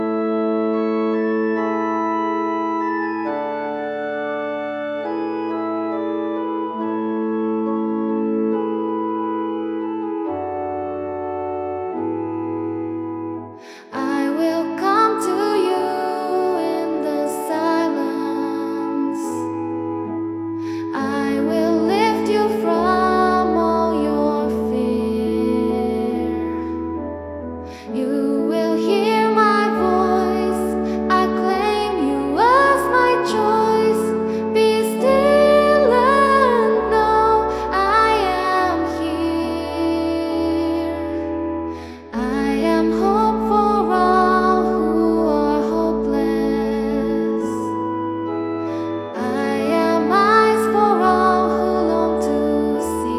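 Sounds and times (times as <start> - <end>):
organ: 0.0 - 53.1
person singing: 13.5 - 53.1.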